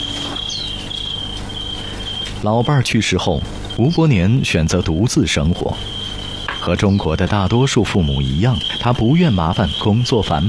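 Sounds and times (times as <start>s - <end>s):
crickets chirping in August: 0.0s - 10.4s
low hum: 0.0s - 10.4s
speech: 2.4s - 6.0s, 6.6s - 10.4s.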